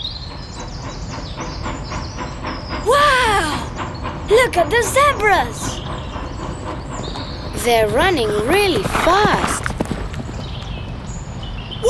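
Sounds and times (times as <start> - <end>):
train clickety-clack on rails: 0.0 - 11.8
speech: 4.4 - 5.8, 7.6 - 9.5.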